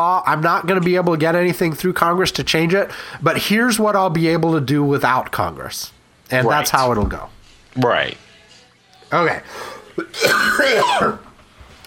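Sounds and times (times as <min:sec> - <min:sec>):
speech: 0:00.0 - 0:08.2, 0:09.1 - 0:11.2
harsh cough from allergies: 0:10.0 - 0:11.2.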